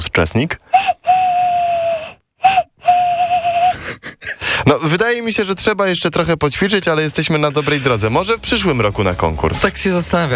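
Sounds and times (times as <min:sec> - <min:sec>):
speech: 0:00.0 - 0:01.0, 0:04.7 - 0:10.3
bird call imitated by blowing into the thumbs of cupped hands: 0:00.7 - 0:03.8.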